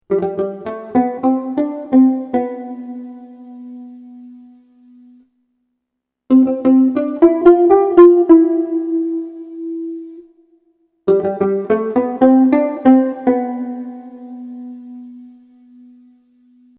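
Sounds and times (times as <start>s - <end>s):
bass banjo: 0.1s - 3.8s, 6.3s - 9.6s, 11.1s - 14.5s.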